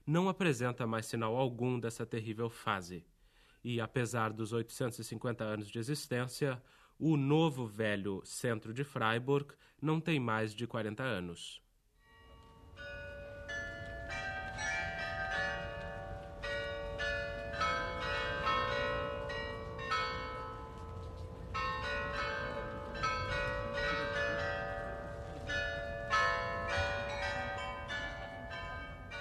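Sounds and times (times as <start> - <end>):
speech: 0.1 - 11.6
high carillon bells ringing from the new town hall in Freiburg: 12.0 - 29.1.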